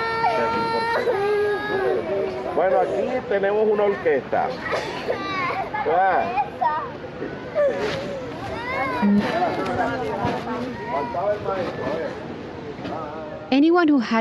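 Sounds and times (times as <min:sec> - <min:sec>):
several young children wailing and sobbing: 0:00.0 - 0:03.2, 0:04.0 - 0:12.1
adult voices: 0:00.0 - 0:13.6
speech: 0:02.6 - 0:06.7, 0:07.7 - 0:08.1, 0:08.8 - 0:12.2, 0:12.8 - 0:14.1.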